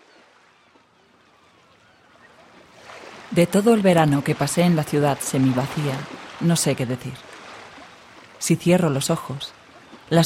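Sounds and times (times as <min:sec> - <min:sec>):
seagull cries: 0:00.0 - 0:02.5
sea waves: 0:00.0 - 0:10.2
speech: 0:03.4 - 0:07.3, 0:08.4 - 0:10.2.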